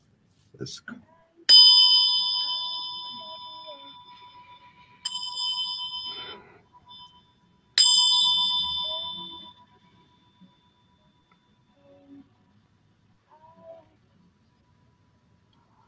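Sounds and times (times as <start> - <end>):
speech: 0.6 - 1.1
bell struck to start meditation: 1.5 - 11.8.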